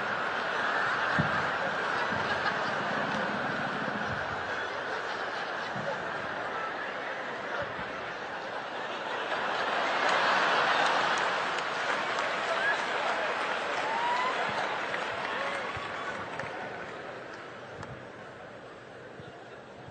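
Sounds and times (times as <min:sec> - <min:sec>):
stand-up comedy audience clapping: 0:00.0 - 0:05.6, 0:09.0 - 0:18.0
laughter: 0:00.0 - 0:18.6.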